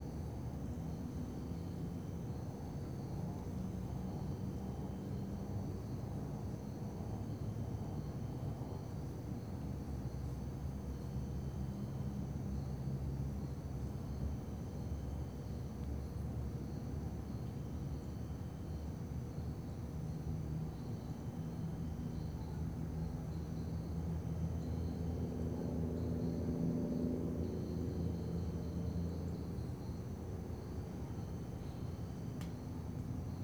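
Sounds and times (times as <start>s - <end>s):
crickets in a town square at night: 0.2s - 33.4s.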